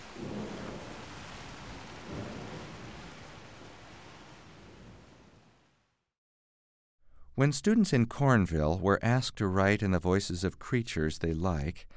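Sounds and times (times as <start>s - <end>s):
deep rolling thunder: 0.0s - 5.6s
steady dense rainfall in a heavy thunderstorm: 0.0s - 5.8s
speech: 7.4s - 11.9s.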